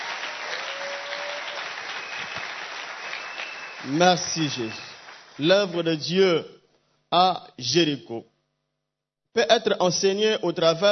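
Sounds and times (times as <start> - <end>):
congregation applauding during a church service: 0.0 - 6.1
speech: 3.8 - 8.3, 9.3 - 10.8.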